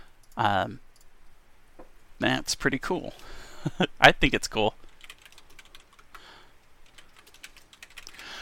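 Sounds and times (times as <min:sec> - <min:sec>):
speech: 0:00.4 - 0:00.9, 0:02.2 - 0:04.8
typing on a computer keyboard: 0:04.9 - 0:06.2, 0:06.8 - 0:08.3.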